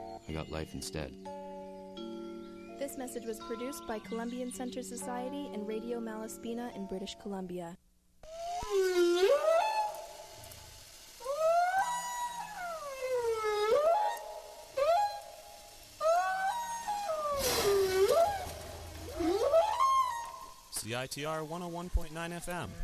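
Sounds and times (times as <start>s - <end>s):
speech: 0.3s - 1.4s, 2.8s - 7.8s, 21.0s - 22.8s
whale calls with long sweeping moans and rising-falling whistles: 8.2s - 20.7s.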